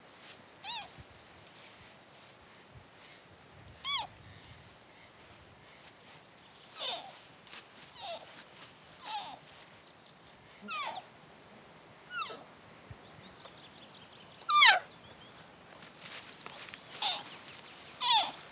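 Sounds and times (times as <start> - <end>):
Siberian wapiti Cervus elaphus sibiricus calf calling: 0.6 - 0.9, 3.8 - 4.1, 6.7 - 7.2, 7.9 - 8.4, 9.0 - 9.6, 10.6 - 11.1, 12.1 - 12.5, 14.4 - 15.0, 16.9 - 18.4.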